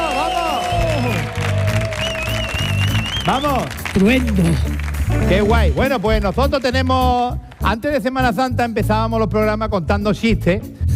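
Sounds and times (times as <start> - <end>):
studio audience clapping: 0.0 - 8.5
speech: 3.3 - 10.8.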